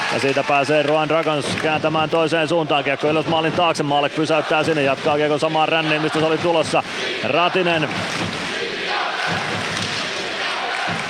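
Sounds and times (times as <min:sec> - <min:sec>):
speech: 0:00.1 - 0:08.4
large ice hockey arena crowd chanting a goalie's nickname in unison: 0:02.4 - 0:11.0.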